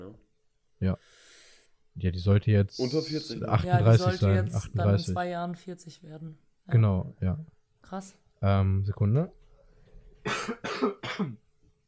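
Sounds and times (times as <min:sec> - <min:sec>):
speech: 0:00.8 - 0:01.2, 0:02.0 - 0:09.4, 0:10.2 - 0:11.4
person coughing harshly: 0:10.3 - 0:11.4.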